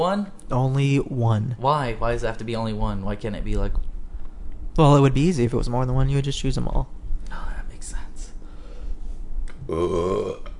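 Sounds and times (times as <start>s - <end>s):
speech: 0.0s - 3.9s, 4.8s - 8.0s, 9.7s - 10.5s
faint room noise: 0.0s - 10.5s
burp: 9.5s - 10.5s.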